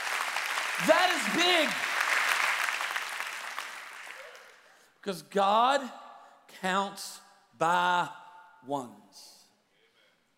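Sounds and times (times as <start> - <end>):
church audience clapping their hands: 0.0 - 4.7
speech: 0.8 - 1.9, 5.0 - 9.4.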